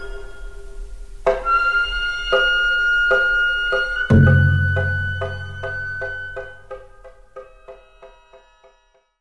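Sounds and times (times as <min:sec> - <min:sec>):
gagaku court music ensemble: 0:01.3 - 0:07.8.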